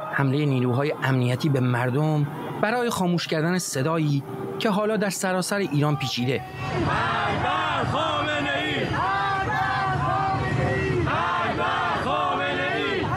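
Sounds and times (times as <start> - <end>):
speech: 0.2 - 8.1
large crowd chanting slogans in unison outdoors: 6.0 - 13.1.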